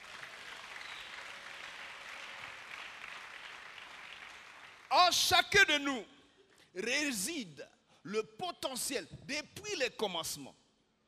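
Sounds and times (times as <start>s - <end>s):
church congregation applauding in praise of the Lord: 0.0s - 5.8s
speech: 5.0s - 6.2s, 6.8s - 10.6s.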